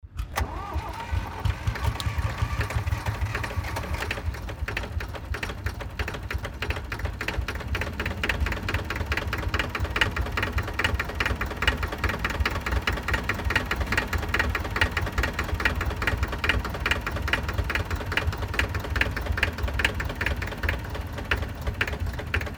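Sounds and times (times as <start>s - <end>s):
tractor engine starting: 0.0s - 22.5s.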